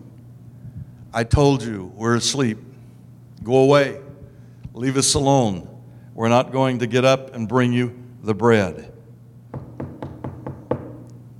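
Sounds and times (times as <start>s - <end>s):
low hum: 0.0s - 11.3s
speech: 1.1s - 2.7s, 3.4s - 4.0s, 4.8s - 8.9s
firm knocking on a door: 9.5s - 11.0s.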